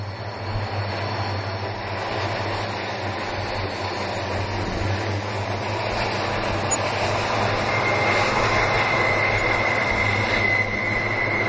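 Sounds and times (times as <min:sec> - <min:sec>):
coal train hauled by diesel locomotives rumbling: 0:00.0 - 0:11.4
faint high train wheel squeal: 0:06.0 - 0:11.4.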